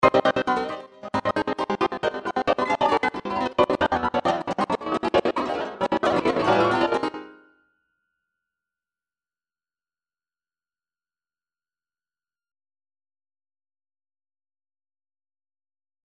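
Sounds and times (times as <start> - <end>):
trance MIDI loops with gates: 0.0 - 7.3.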